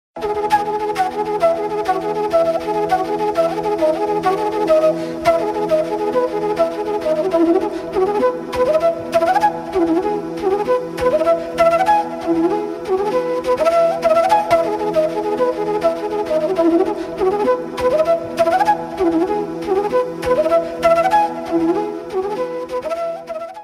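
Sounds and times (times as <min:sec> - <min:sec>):
flute ringtone: 0:00.2 - 0:23.6.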